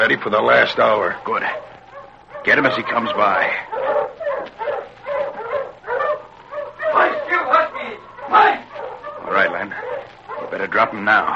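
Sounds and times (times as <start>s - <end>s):
speech: 0.0s - 1.7s, 2.4s - 4.0s, 10.6s - 11.3s
several huskies barking and yipping: 0.0s - 11.3s.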